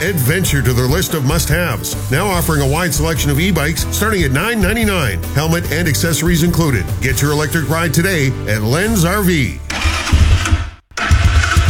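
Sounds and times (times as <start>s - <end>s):
speech: 0.0s - 9.7s
ATV engine starting: 9.7s - 11.6s.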